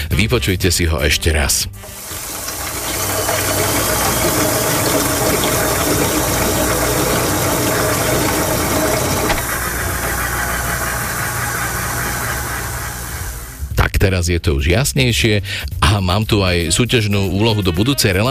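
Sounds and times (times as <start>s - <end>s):
speech: 0.2s - 2.2s, 14.0s - 18.3s
potter's wheel spinning with a motorized whir and hum: 1.8s - 13.7s.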